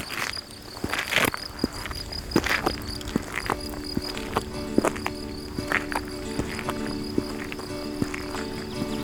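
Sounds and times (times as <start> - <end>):
crickets chirping among greenery and flowers in the mountains: 0.0 - 9.0.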